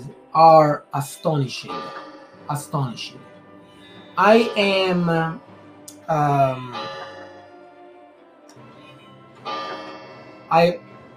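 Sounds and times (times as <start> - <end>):
speech: 0.3 - 3.3, 4.2 - 5.5, 6.1 - 6.9, 10.5 - 10.9
clock chiming the hour at 9 p.m.: 1.2 - 7.8, 8.8 - 10.8.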